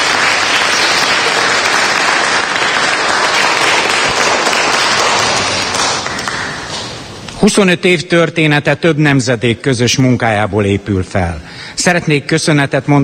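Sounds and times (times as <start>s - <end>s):
crowd applauding at a community anniversary celebration: 0.0s - 7.1s
speech: 7.4s - 13.0s.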